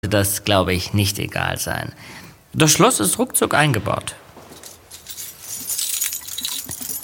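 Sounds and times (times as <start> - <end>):
speech: 0.0 - 4.2
bunch of apartment keys jangling: 4.4 - 7.0.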